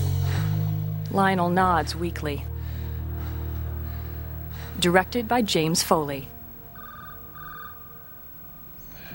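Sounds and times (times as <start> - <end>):
low hum: 0.0 - 9.1
speech: 1.1 - 2.5, 4.8 - 6.4
telephone ringing in trilling bursts: 6.4 - 8.7.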